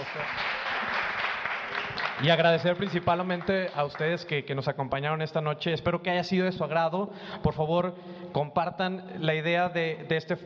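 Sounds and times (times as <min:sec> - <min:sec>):
crowd clapping: 0:00.0 - 0:04.6
speech: 0:00.1 - 0:00.5, 0:02.2 - 0:10.4.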